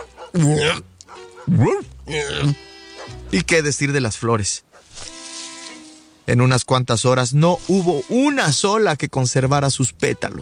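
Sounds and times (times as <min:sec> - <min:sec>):
dog yelping and whimpering: 0:00.0 - 0:01.8
speech: 0:00.3 - 0:00.9, 0:01.5 - 0:02.6, 0:03.3 - 0:05.1, 0:06.3 - 0:10.4.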